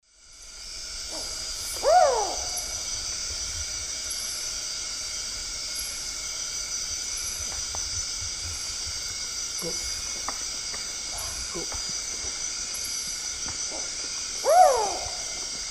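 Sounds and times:
Ciccaba huhula owl calling in the Eastern Lowlands of South America: 0:01.1 - 0:02.9, 0:13.7 - 0:15.5.

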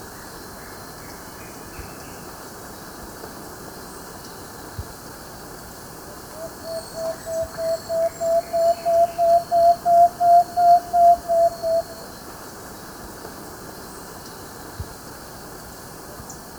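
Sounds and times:
plain-backed antpitta singing in Ecuador: 0:06.4 - 0:12.1.

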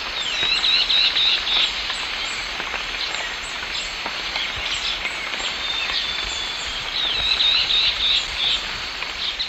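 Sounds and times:
Myrmotherula longipennis zimmeri call in S. America Eastern Lowlands: 0:00.2 - 0:03.4, 0:04.4 - 0:09.4.

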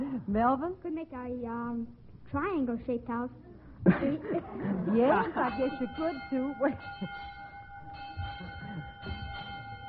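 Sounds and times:
speech: 0:00.3 - 0:07.3
school bell ringing: 0:05.3 - 0:09.8.

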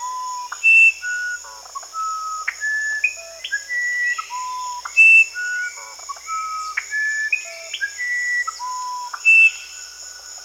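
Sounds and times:
Musician wren Cyphorhinus aradus whistling clear tonal notes in South America: 0:00.0 - 0:09.8
continuous shrill insect chorus: 0:00.0 - 0:10.4.

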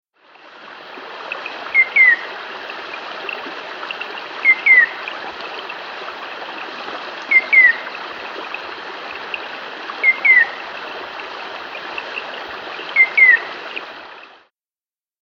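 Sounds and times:
stream rushing in South America: 0:00.2 - 0:14.5
Rufous antpitta whistling song in South America: 0:01.7 - 0:02.2, 0:04.4 - 0:05.0, 0:07.3 - 0:07.8, 0:10.0 - 0:10.5, 0:13.0 - 0:13.5.

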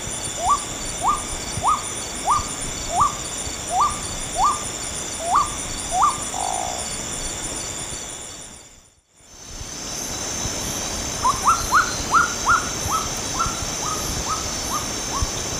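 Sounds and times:
Nyctidromus albicollis calls in the Eastern Lowlands of South America: 0:00.4 - 0:06.9, 0:11.2 - 0:15.4.

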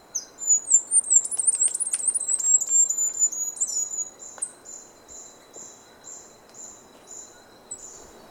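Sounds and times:
bird song of high sharp chirps in Ecuador: 0:00.2 - 0:08.2
scattered ticks: 0:00.7 - 0:03.2.

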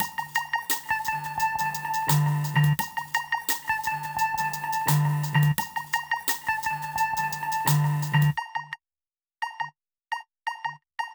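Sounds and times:
old-school hip-hop music: 0:00.0 - 0:08.4.

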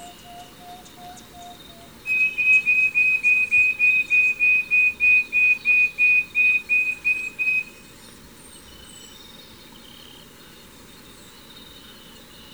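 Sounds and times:
Wing-banded Wren song in Ecuador: 0:00.0 - 0:08.0.

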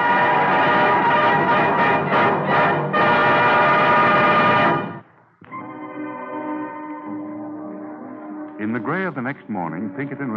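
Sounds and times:
long loud train whistle blasts: 0:00.0 - 0:05.0
speech: 0:08.8 - 0:10.3.

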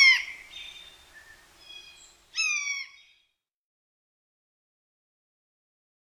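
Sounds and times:
blue jay calling: 0:00.0 - 0:03.1.

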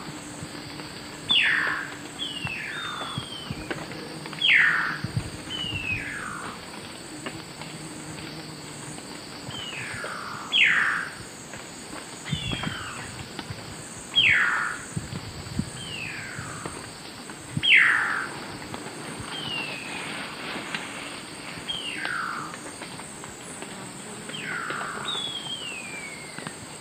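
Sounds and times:
Frederickena unduligera group calls in South American Eastern Lowlands: 0:01.1 - 0:06.7, 0:09.5 - 0:11.3, 0:12.2 - 0:13.3, 0:14.0 - 0:15.1, 0:15.7 - 0:26.6.

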